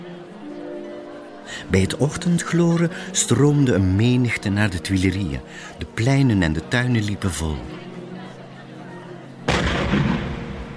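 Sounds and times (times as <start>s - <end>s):
speech: 1.5s - 7.9s
single loud cannon shot booming and echoing: 9.5s - 10.7s.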